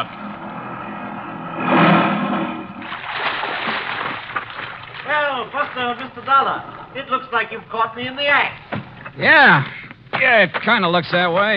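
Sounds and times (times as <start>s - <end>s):
boat pulling up through water: 2.4s - 6.4s
choppy water splashing and sloshing: 2.6s - 7.0s
speech: 5.4s - 11.5s.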